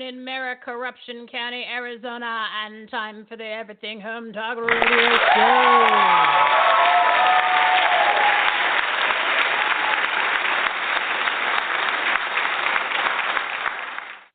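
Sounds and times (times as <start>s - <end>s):
speech: 0.0s - 7.4s
live studio audience applauding: 4.7s - 14.3s.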